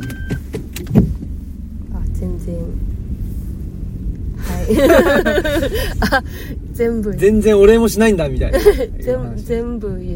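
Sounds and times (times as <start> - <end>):
car engine humming while reversing: 0.0 - 10.1
laughter: 4.6 - 6.2
speech: 4.7 - 10.1.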